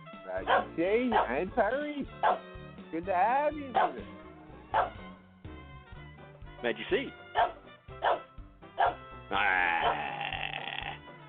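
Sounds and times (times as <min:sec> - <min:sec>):
speech: 0:00.3 - 0:05.0, 0:06.6 - 0:08.2, 0:09.3 - 0:10.0
dog barking and whining: 0:00.4 - 0:01.4, 0:02.2 - 0:02.4, 0:03.7 - 0:04.0, 0:04.7 - 0:05.0, 0:07.3 - 0:09.0.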